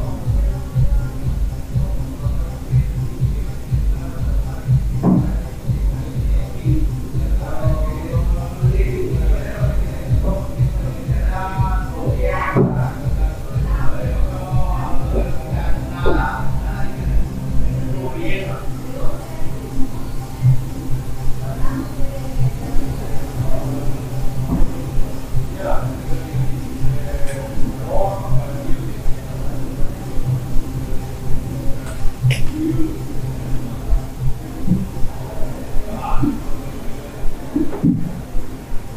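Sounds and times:
rapid rhythmic rattle: 0.0s - 38.9s
steady low hum in a hostel room: 0.0s - 38.9s
voices: 0.0s - 38.9s
sharp knocks and clicks: 4.7s - 5.4s.

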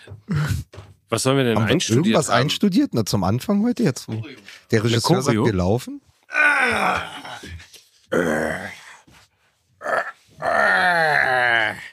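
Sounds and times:
speech: 0.0s - 7.2s, 8.1s - 8.8s
man groaning from sore leg muscles after leg training: 6.3s - 8.9s, 9.8s - 11.9s.

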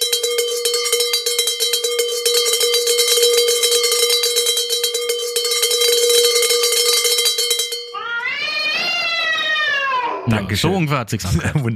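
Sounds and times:
small bell ringing rapidly: 0.0s - 8.4s
cat meowing: 8.0s - 10.3s
laughter: 10.3s - 11.7s
speech: 10.5s - 11.7s.

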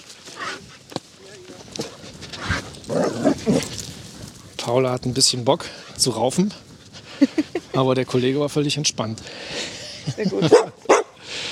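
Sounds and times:
faint outdoor noise: 0.0s - 11.4s
speech: 4.7s - 6.7s, 7.3s - 10.8s
laughter: 7.1s - 7.9s, 9.6s - 10.8s
dog giving short barks: 10.4s - 11.2s.

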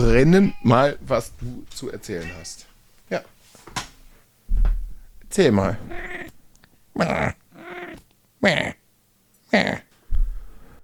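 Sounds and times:
speech: 0.0s - 3.3s, 5.3s - 6.4s, 7.0s - 7.4s, 8.4s - 8.8s, 9.5s - 9.8s
cat meowing: 0.1s - 0.9s, 2.2s - 2.7s, 5.8s - 6.4s, 7.2s - 8.0s
cat low growling rumble: 5.7s - 6.4s, 7.0s - 8.8s, 9.5s - 9.9s.

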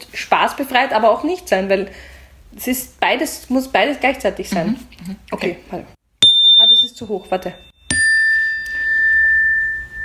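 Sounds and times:
speech: 0.4s - 6.0s, 7.0s - 7.7s
doorbell ringing with a single sustained electronic tone: 6.2s - 10.0s.

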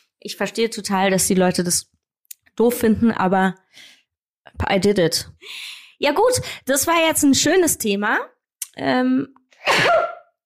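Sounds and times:
speech: 0.2s - 2.0s, 2.6s - 4.0s, 4.6s - 10.0s
person sneezing: 9.6s - 10.3s.

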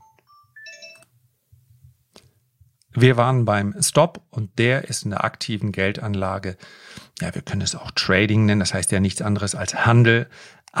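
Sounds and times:
telephone ringing with an electronic ringtone: 0.0s - 1.1s
speech: 3.0s - 10.7s.

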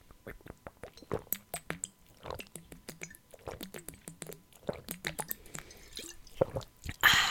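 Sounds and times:
person sipping water: 0.2s - 7.2s.

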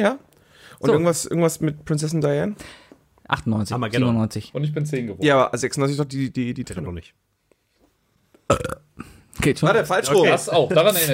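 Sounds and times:
speech: 0.0s - 7.3s, 8.5s - 8.8s, 9.4s - 11.1s
loud gurgling burp: 8.5s - 9.2s.

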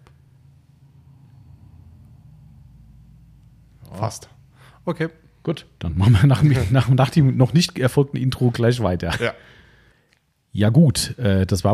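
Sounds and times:
customer's car arriving with engine rumbling at low pitch: 0.0s - 5.4s
speech: 3.9s - 9.6s, 10.6s - 11.7s
laughter: 6.0s - 7.0s.

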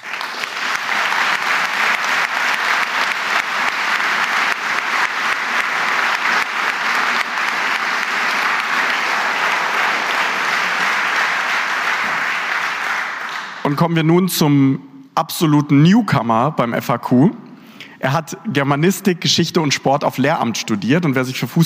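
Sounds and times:
large audience applauding: 0.0s - 13.8s
speech: 13.7s - 17.4s, 18.0s - 21.6s.

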